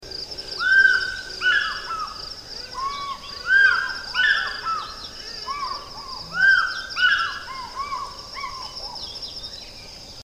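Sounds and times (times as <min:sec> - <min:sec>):
African fish eagle song: 0:00.6 - 0:08.8.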